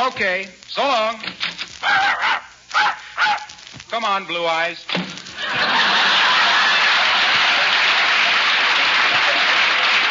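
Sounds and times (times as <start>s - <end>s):
speech: 0.2s - 2.0s, 4.0s - 5.9s
dog barking: 1.8s - 3.6s
laughter: 5.3s - 10.0s.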